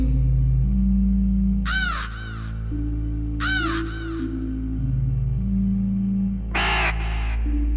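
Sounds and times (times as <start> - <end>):
steady low droning musical background: 0.0 - 7.7
raven cawing: 1.6 - 4.9, 6.5 - 7.7.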